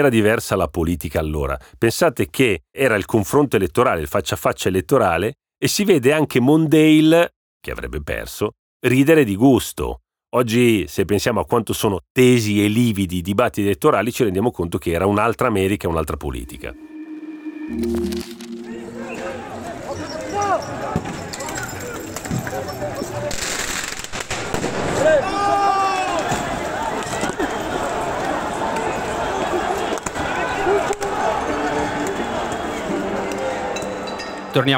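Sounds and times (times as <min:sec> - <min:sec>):
speech: 0:00.0 - 0:16.9, 0:17.7 - 0:18.5, 0:34.6 - 0:34.7
dense outdoor crowd roaring and shouting at a street protest: 0:16.9 - 0:21.6, 0:24.9 - 0:34.6
sharp firecracker bangs: 0:23.3 - 0:25.4.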